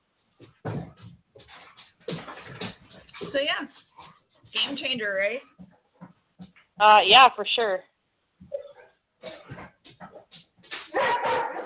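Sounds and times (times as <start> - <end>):
speech: 3.3 - 3.8, 4.5 - 5.5, 6.8 - 7.9
dogs barking: 10.9 - 11.6.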